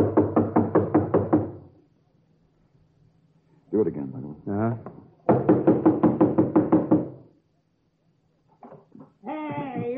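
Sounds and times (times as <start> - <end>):
loud knocks on a door: 0.0 - 1.6, 4.8 - 7.2
speech: 3.8 - 5.0.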